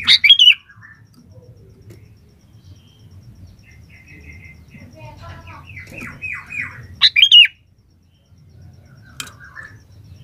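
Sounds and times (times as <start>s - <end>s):
sooty-headed bulbul soft drooping chirps: 0.0s - 10.2s.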